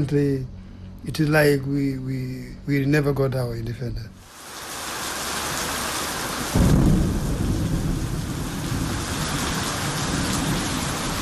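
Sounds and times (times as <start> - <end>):
speech: 0.0 - 4.2
steady heavy rain: 4.2 - 11.2
deep thunder rumbling: 6.4 - 11.2.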